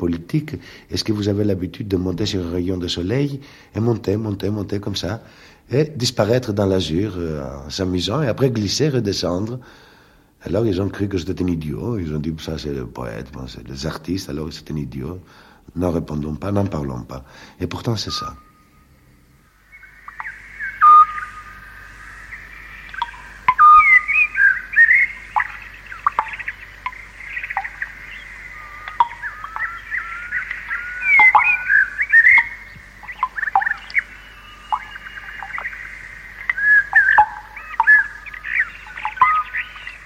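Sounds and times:
speech: 0.0s - 18.5s
faint steady low hum on cassette recording: 0.0s - 40.0s
nightingale singing whistled phrases and trills: 17.8s - 40.0s.

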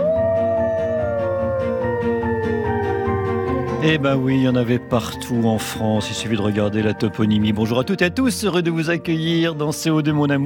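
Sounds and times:
single long wolf howl: 0.0s - 4.9s
speech: 3.8s - 10.4s.

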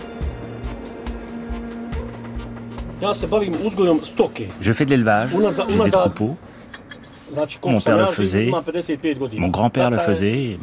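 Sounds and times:
heavy mining trucks rumbling past a quarry: 0.0s - 7.6s
speech: 3.0s - 6.5s, 7.3s - 10.6s.

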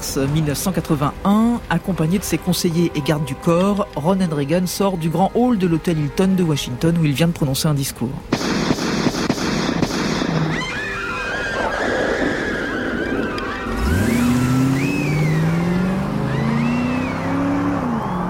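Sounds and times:
loud chaotic street noise: 0.0s - 5.1s, 8.2s - 18.2s
speech: 0.2s - 8.7s
gunshots: 8.3s - 10.9s
car engine revving hard and pulling away: 13.0s - 18.2s.

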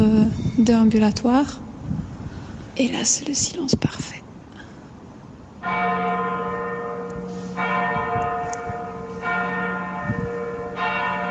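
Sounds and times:
speech: 0.0s - 1.6s, 2.8s - 4.2s
church bells ringing in Kraków Poland: 5.6s - 11.2s.

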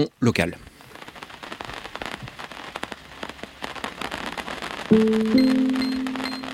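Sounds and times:
speech: 0.0s - 0.7s, 4.9s - 5.6s
sudden rain shower on a hard surface at a small farm north of Rennes France: 0.0s - 6.5s.

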